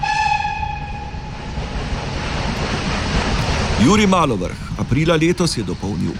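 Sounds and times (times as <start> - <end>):
train horn: 0.0 - 1.4
railway wagons rattling and rumbling past: 0.8 - 6.1
speech: 3.8 - 6.1.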